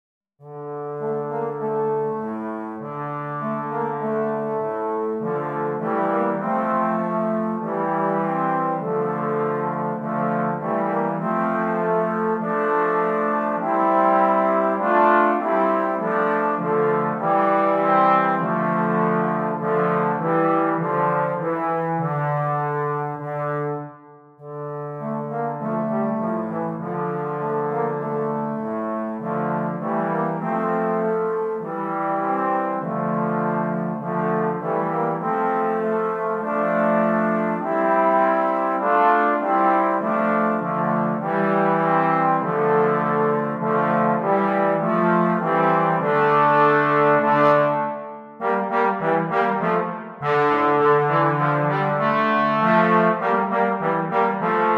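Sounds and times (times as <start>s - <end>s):
trombone trio playing: 0.5s - 54.7s.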